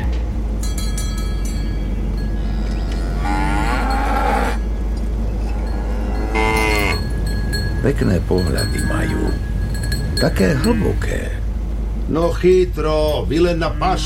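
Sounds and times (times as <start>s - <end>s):
steady low engine-like rumble: 0.0s - 14.0s
faint bell-like ringing: 0.6s - 11.5s
cow mooing: 2.2s - 7.3s
speech: 7.9s - 9.5s, 10.2s - 11.4s, 12.1s - 14.0s.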